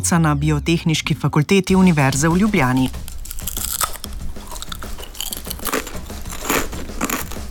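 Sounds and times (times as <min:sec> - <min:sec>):
speech: 0:00.0 - 0:03.6
biting and crunching crispy potato chips: 0:02.7 - 0:07.4.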